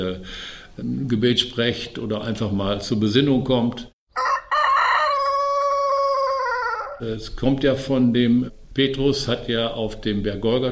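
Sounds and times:
speech: 0.0s - 3.9s, 7.0s - 10.7s
rooster crowing at sunrise: 4.1s - 7.0s.

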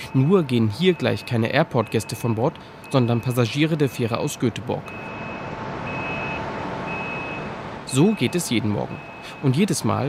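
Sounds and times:
high warning beeps from a mobile ferry gangway: 0.0s - 4.1s, 4.8s - 9.7s
speech: 0.1s - 5.1s, 7.9s - 10.0s.

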